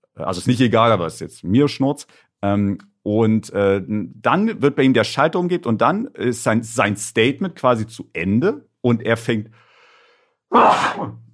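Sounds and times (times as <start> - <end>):
speech: 0.2 - 9.6, 10.5 - 11.2
person sneezing: 10.5 - 11.2.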